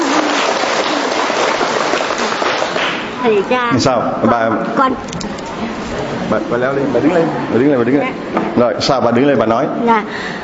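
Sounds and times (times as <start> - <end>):
crowd applause: 0.0 - 3.2
speech: 3.2 - 10.4.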